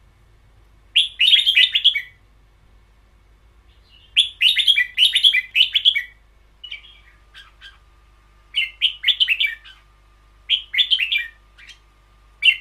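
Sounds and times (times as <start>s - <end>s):
caged red-whiskered bulbul warbling song: 0.9s - 2.2s, 3.7s - 7.8s, 8.5s - 9.9s, 10.5s - 12.5s.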